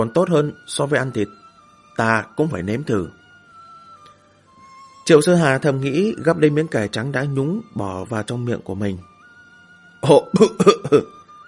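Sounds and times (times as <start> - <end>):
speech: 0.0 - 1.4, 2.0 - 3.2, 5.1 - 9.1, 10.0 - 11.2
dry coughing after choking on spicy chili-laced vegetables: 10.4 - 11.2.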